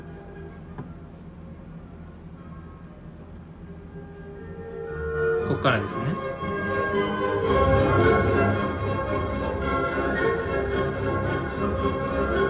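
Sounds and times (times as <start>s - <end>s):
full orchestra playing a symphonic theme in a major key: 3.7s - 12.4s
speech: 5.6s - 6.5s.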